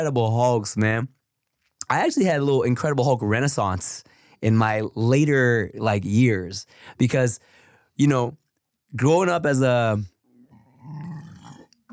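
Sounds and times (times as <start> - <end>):
speech: 0.0 - 1.2, 1.9 - 10.1
long low rumbling burp: 10.5 - 11.8.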